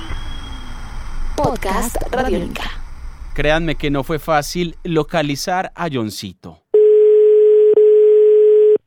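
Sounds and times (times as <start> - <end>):
speech: 1.4 - 6.6
telephone ringing tone from a call to a home: 6.7 - 8.8.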